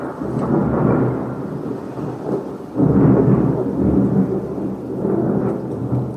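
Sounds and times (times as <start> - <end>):
deep rolling thunder: 0.0 - 6.1
steady rain hissing: 0.0 - 6.1.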